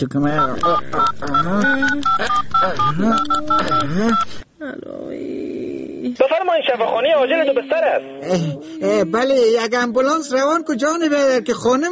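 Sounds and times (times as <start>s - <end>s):
speech: 0.0s - 5.3s, 6.2s - 11.9s
telephone keypad tones dialing a hospital emergency line: 0.3s - 4.4s.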